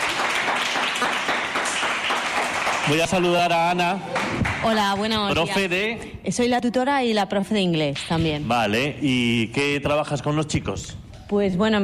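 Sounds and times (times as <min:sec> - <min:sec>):
group of children clapping: 0:00.0 - 0:03.5, 0:04.1 - 0:04.8
speech: 0:02.9 - 0:11.8.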